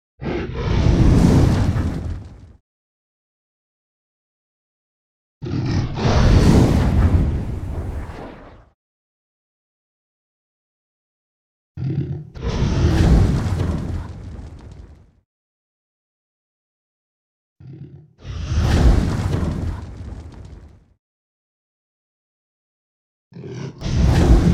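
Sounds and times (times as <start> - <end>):
dragon roaring: 0.2 - 2.1, 5.4 - 6.7, 11.8 - 14.1, 23.4 - 24.5
dragon breathing fire: 0.2 - 2.6, 5.4 - 8.7, 12.4 - 14.8, 18.2 - 20.7, 23.4 - 24.5.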